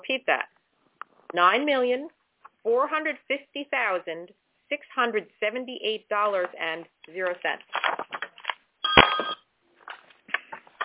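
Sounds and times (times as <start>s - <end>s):
person reading bid amounts aloud: 0.0s - 0.5s, 1.3s - 8.2s
speech: 0.0s - 0.6s, 1.3s - 8.0s
short electronic telephone ring: 8.8s - 9.5s.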